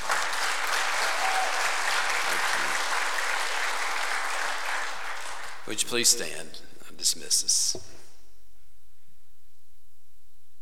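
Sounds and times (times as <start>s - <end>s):
church audience applauding: 0.0s - 6.1s
speech: 5.7s - 8.0s.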